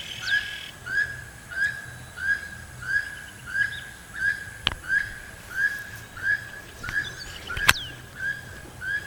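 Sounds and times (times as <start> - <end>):
Keel-billed toucan Ramphastos sulfuratus giving harsh croaks: 0.0 - 9.0
sharp clicks: 4.6 - 5.2, 6.8 - 7.9.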